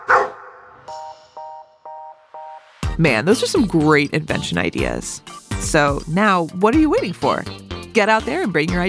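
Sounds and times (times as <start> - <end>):
dog barking and yipping: 0.0 - 0.8
speech: 3.0 - 8.8.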